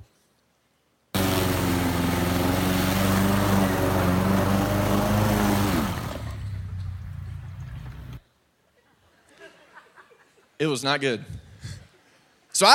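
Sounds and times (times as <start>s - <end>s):
newly bought riding lawn mower engine running: 1.2s - 8.2s
speech: 10.6s - 11.4s, 12.6s - 12.7s.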